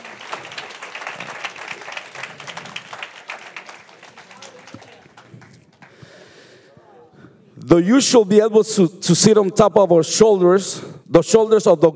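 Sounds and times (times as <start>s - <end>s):
audience applauding during a church service: 0.0s - 6.4s
speech: 7.7s - 11.9s.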